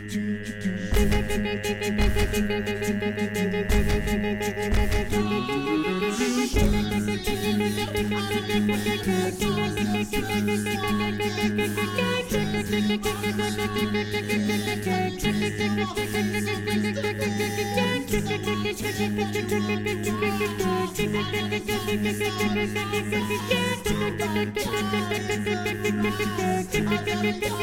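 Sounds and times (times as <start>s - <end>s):
tenor voice: 0.1s - 27.6s.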